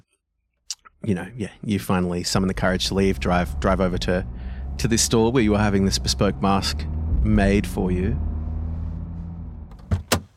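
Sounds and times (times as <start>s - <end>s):
speech: 1.0s - 8.3s
car engine idling with a low rumble: 1.9s - 9.9s
car door opening and shutting as the driver gets out: 9.7s - 10.3s.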